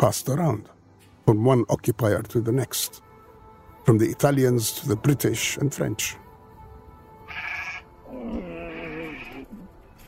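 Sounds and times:
speech: 0:00.0 - 0:03.0, 0:03.8 - 0:06.2
goats bleating: 0:07.3 - 0:09.6.

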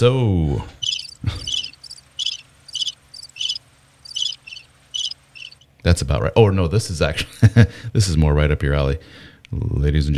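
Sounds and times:
speech: 0:00.0 - 0:01.4, 0:05.8 - 0:10.1
crickets chirping: 0:00.7 - 0:05.6.

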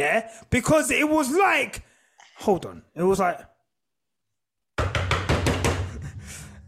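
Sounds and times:
speech: 0:00.0 - 0:03.5
imitated aggressive loud knocking on a house door: 0:04.8 - 0:06.0.

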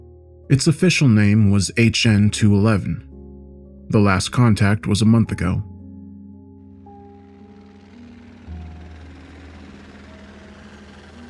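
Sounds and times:
speech: 0:00.5 - 0:03.1, 0:03.9 - 0:05.7
helicopter engine whine and rotor whirl: 0:07.0 - 0:11.2.

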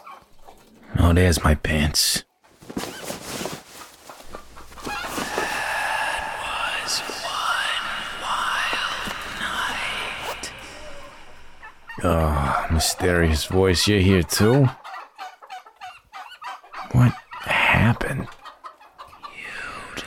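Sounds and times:
speech: 0:01.1 - 0:02.8, 0:12.0 - 0:14.8
farmyard noise: 0:02.7 - 0:19.8
turkeys gobbling on a turkey farm: 0:03.7 - 0:10.0, 0:10.6 - 0:19.4.

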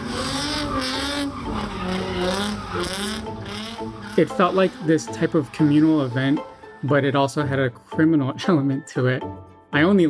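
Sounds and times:
car tires squealing while burning rubber: 0:00.0 - 0:07.2
car engines roaring: 0:00.0 - 0:07.4
speech: 0:04.2 - 0:10.0.

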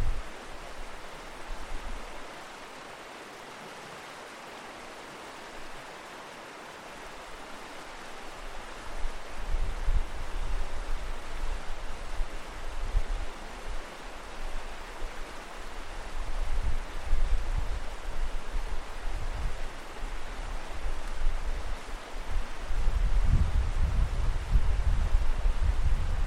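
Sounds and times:
mountain river rushing and churning after rain: 0:00.0 - 0:26.2.

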